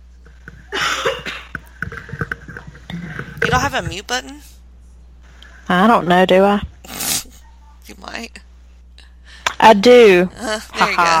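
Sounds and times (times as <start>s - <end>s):
person clearing throat: 0.7s - 1.6s
speech: 3.6s - 4.5s, 5.7s - 6.7s, 8.0s - 8.5s, 9.6s - 11.1s.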